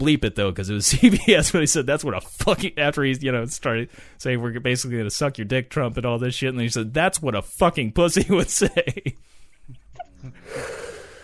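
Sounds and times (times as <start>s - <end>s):
speech: 0.0s - 9.2s
person snoring with rattling nasal snorts: 10.4s - 11.2s.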